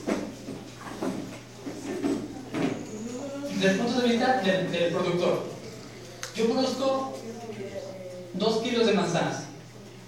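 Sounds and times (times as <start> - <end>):
chair scraping and bumping as it is dragged across the floor: 0.0 - 3.2
steady room hum: 0.0 - 10.0
speech: 3.6 - 5.6, 6.4 - 9.4.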